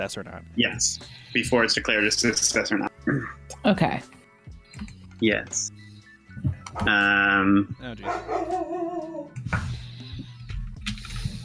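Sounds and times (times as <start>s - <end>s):
speech: 0.0s - 4.2s, 4.8s - 5.8s, 6.4s - 9.6s
dog barking: 8.0s - 9.3s.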